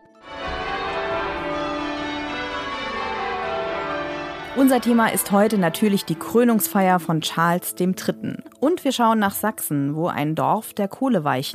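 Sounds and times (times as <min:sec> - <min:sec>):
church bells ringing: 0:00.0 - 0:09.2
speech: 0:04.6 - 0:11.5.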